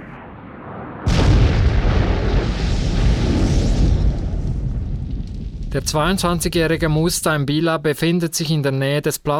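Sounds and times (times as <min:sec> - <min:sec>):
bomb explosion: 0:00.0 - 0:07.5
roaring rumble of debris and blast: 0:00.4 - 0:07.8
speech: 0:05.8 - 0:09.3.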